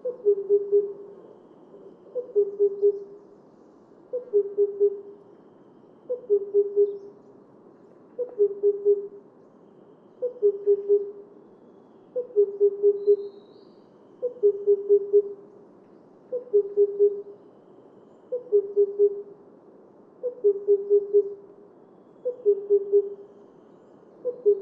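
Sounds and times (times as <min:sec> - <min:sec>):
Himalayan cuckoo hooting call: 0:00.0 - 0:03.2, 0:04.1 - 0:07.2, 0:08.2 - 0:11.4, 0:12.1 - 0:15.5, 0:16.3 - 0:19.4, 0:20.2 - 0:21.5, 0:22.2 - 0:24.6.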